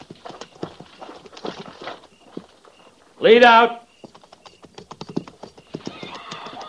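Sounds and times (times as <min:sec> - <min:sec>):
several horses walking with hooves clip-clopping: 0:00.0 - 0:06.6
speech: 0:03.2 - 0:03.8
horse whinny: 0:05.8 - 0:06.6.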